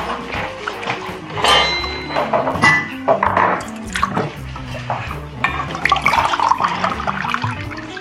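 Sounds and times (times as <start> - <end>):
water poured into a glass: 0.0 - 7.9
glass clinks: 1.4 - 3.7.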